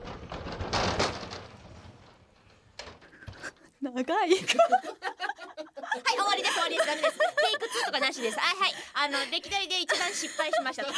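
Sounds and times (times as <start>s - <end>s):
sliding door rattling open: 0.0s - 3.7s
speech: 3.8s - 5.1s, 6.0s - 10.9s
laughter: 4.3s - 10.9s.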